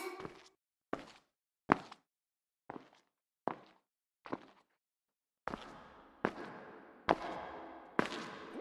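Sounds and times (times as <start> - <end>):
woman's footsteps: 0.2 - 2.1, 2.7 - 4.7, 5.5 - 7.4, 8.0 - 8.5.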